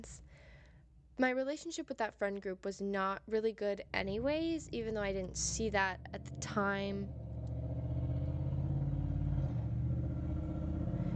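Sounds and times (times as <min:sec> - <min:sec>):
speech: 0:00.0 - 0:00.2, 0:01.2 - 0:07.2
heavy truck engine rumbling while passing by: 0:03.9 - 0:11.1.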